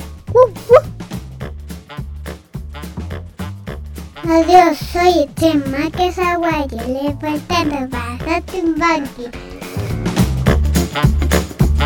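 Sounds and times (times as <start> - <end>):
music: 0.0 - 11.8
dog barking: 0.4 - 0.9
speech: 4.2 - 9.4, 11.0 - 11.2.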